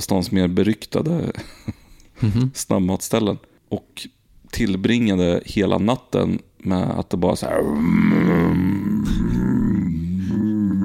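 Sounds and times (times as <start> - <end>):
speech: 0.0 - 8.8
person imitating a stomach rumble with a gurgling growl: 7.5 - 10.8.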